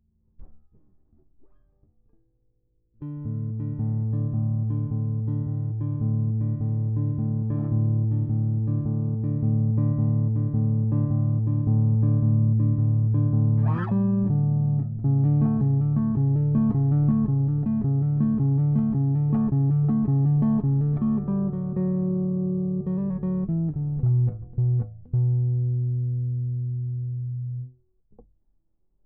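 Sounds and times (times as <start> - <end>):
bass music outro: 3.0 - 27.8.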